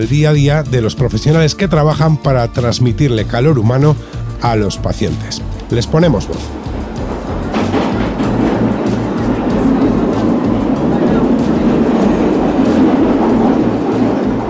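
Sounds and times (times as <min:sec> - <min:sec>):
speech: 0:00.0 - 0:06.6
train rolling past a railway station in Granada: 0:00.0 - 0:14.4
train wheels clickety-clack over rail joints: 0:05.6 - 0:14.4.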